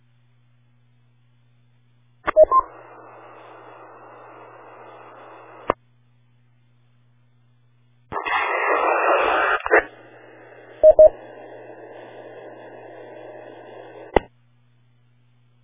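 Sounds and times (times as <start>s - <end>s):
low steady radio hiss: 0.0s - 8.1s, 8.7s - 15.6s
quick beeps: 2.3s - 2.7s, 10.8s - 11.2s
radio static burst from weak station keying repeater: 2.3s - 5.8s, 8.1s - 14.3s.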